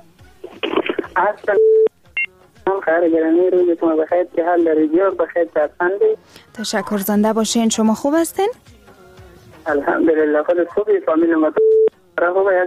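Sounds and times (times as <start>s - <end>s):
electronic telephone beep: 0.8s - 2.3s, 11.5s - 11.9s
speech: 1.2s - 1.7s, 2.9s - 8.8s, 9.6s - 11.6s, 12.2s - 12.6s.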